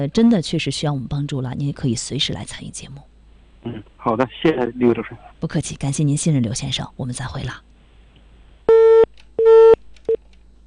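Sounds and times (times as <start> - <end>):
speech: 0.0 - 7.7
telephone busy tone after a call is hung up: 8.7 - 9.8.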